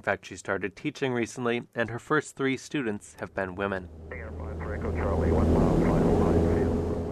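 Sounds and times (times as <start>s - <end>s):
speech: 0.0s - 4.2s, 4.8s - 5.7s
indistinct voices talking faintly inside the airplane cabin: 3.2s - 7.1s
small aerobatic airplane engine droning inside the cabin: 3.4s - 7.1s.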